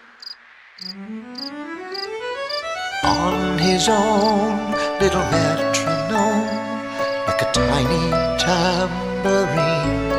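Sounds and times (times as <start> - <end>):
cricket chirping: 0.0 - 2.6
speech: 0.8 - 1.6, 3.0 - 6.6, 7.4 - 10.1.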